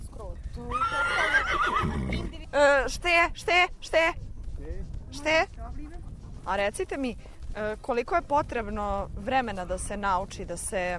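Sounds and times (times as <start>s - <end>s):
speech: 0.6s - 0.9s, 1.5s - 4.2s, 5.1s - 5.6s, 6.4s - 10.9s
horse neighing during a riding lesson: 0.6s - 2.5s.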